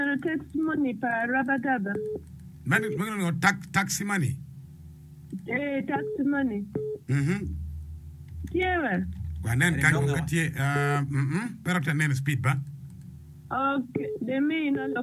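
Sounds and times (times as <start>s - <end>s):
speech: 0.2s - 4.5s, 5.4s - 7.6s, 8.4s - 12.7s, 13.5s - 15.0s
electronic telephone dialing tones: 1.4s - 2.2s, 5.5s - 7.0s, 14.0s - 15.0s
chirpy voice-like sounds: 7.1s - 7.5s, 9.7s - 10.4s.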